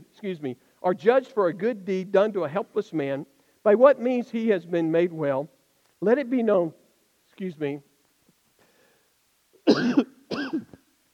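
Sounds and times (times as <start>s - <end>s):
speech: 0.2s - 6.8s, 7.4s - 7.9s, 9.8s - 10.1s
person coughing during a scripture reading: 9.6s - 10.8s.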